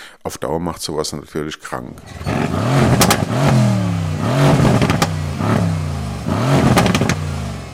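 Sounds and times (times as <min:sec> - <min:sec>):
speech: 0:00.2 - 0:03.7
tuned car engine revving hard: 0:02.0 - 0:07.7
tuned car engine backfire pops: 0:06.6 - 0:07.2.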